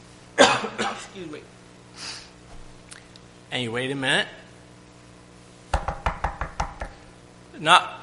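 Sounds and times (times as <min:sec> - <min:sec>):
speech: 0:01.2 - 0:02.1, 0:03.5 - 0:04.4, 0:07.6 - 0:08.0
sharp knocking: 0:05.7 - 0:07.0.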